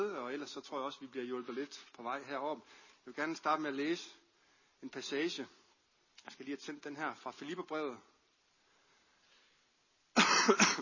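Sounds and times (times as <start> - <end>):
speech: 0.5 - 4.2, 4.8 - 5.6, 6.2 - 8.1, 10.4 - 10.7
harsh cough: 10.2 - 10.8.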